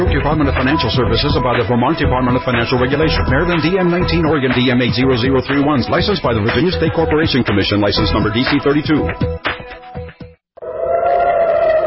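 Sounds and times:
speech: 0.0 - 9.5
air raid siren wailing in Tel Aviv Israel after rocket fire: 10.6 - 11.8.

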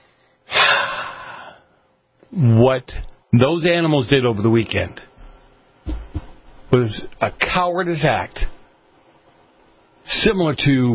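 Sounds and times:
speaker taking a deep breath: 0.0 - 1.8
speech: 2.3 - 5.0, 5.8 - 6.0, 6.7 - 8.5, 10.0 - 10.9.

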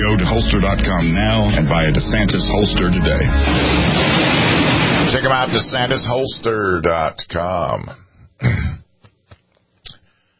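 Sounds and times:
speech: 0.0 - 8.8
throat clearing: 8.4 - 8.9.

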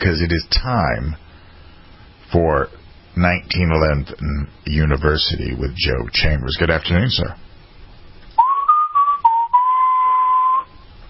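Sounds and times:
speech: 0.1 - 1.2, 2.3 - 7.4
person whistling a western-style tune: 8.4 - 10.8.

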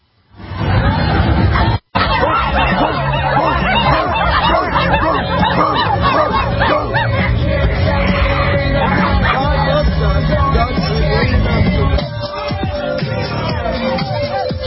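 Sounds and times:
crowd of Pride marchers shouting and jeering in Seattle: 0.5 - 14.6
laughter: 0.6 - 14.6
sharp barking cries from marchers: 2.0 - 9.8.

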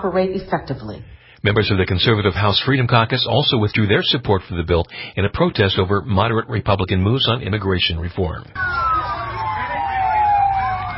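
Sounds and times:
speech: 0.0 - 8.8
emergency siren wailing at a crash scene: 8.5 - 10.9.

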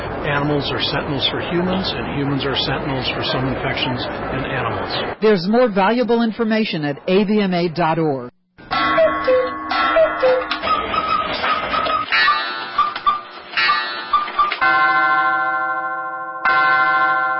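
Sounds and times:
speech: 0.4 - 8.3
thousands of clocks ticking in a clock store in Dallas, Texas: 8.6 - 15.2
thousands of clocks chiming in a clock store in Dallas, Texas: 8.6 - 17.3.

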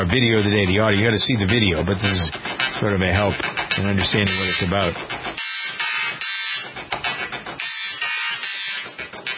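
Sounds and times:
speech: 0.0 - 5.2
dot matrix printer rattling out a film theme melody: 0.0 - 9.3.

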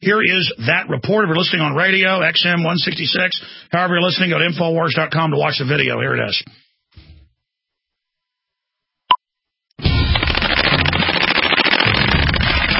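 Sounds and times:
speech: 0.0 - 6.6
machine gun fire: 9.9 - 12.7.

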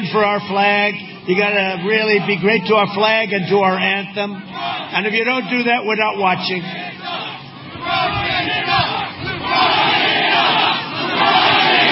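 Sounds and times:
speech: 0.1 - 7.2
large rally crowd chanting rhythmically: 0.2 - 3.2, 4.2 - 5.1, 6.6 - 11.9.

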